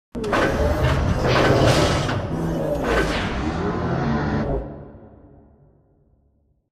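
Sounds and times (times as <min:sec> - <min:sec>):
robot arm pass receive close: 0:00.2 - 0:03.5.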